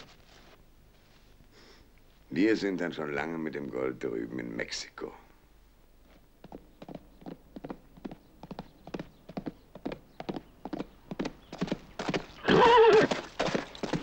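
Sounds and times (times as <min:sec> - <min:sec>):
speech: 0:02.3 - 0:05.2
horse hooves clip-clopping: 0:06.1 - 0:14.0
horse whinnying loud and shrill: 0:12.4 - 0:14.0.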